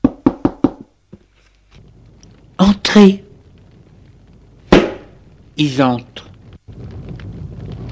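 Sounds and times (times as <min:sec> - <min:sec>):
firm knocking on a wooden door: 0:00.0 - 0:00.9
speech: 0:02.6 - 0:03.2, 0:05.6 - 0:06.2.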